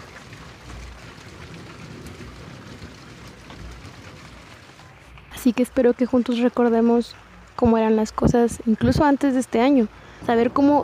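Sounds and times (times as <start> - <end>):
steady dense rain hissing with pattering hits: 0.0 - 10.8
speech: 5.4 - 10.8.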